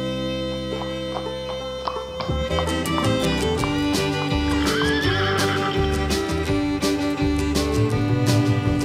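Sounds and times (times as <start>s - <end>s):
bright musical accompaniment: 0.0s - 8.8s
clip-clop of galloping horse hooves: 0.6s - 8.8s
horse whinnying and neighing: 4.4s - 5.9s.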